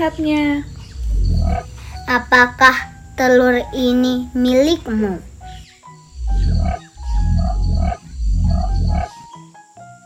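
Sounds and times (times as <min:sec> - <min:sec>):
speech: 0:00.0 - 0:00.7, 0:01.5 - 0:05.3
cassowary booming calls: 0:00.6 - 0:03.4, 0:05.3 - 0:09.2.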